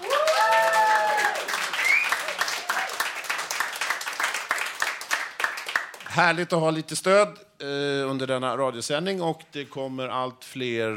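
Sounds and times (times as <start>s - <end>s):
people whooping and cheering: 0.0s - 3.2s
studio audience at a live radio broadcast applauding: 0.0s - 6.1s
speech: 6.2s - 10.9s.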